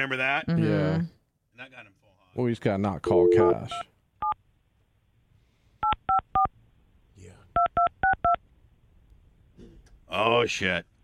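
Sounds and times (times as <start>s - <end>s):
speech: 0.0s - 3.9s, 10.1s - 10.9s
touch-tone telephone dialing beeps: 3.1s - 4.4s, 5.8s - 6.5s, 7.6s - 8.4s.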